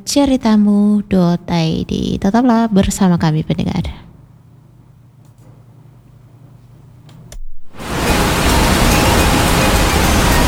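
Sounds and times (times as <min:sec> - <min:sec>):
speech: 0:00.0 - 0:04.0
rushing waterfall: 0:07.7 - 0:10.4.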